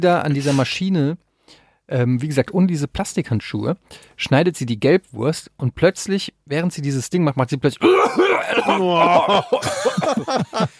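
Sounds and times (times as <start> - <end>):
speech: 0.0 - 10.7
voice imitating a cough: 7.8 - 10.1
laughter: 8.6 - 10.7.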